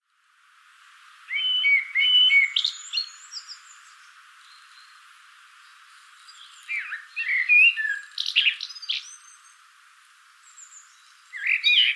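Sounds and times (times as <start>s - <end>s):
common blackbird Turdus merula singing: 1.3s - 5.0s, 5.8s - 9.6s, 10.4s - 11.9s.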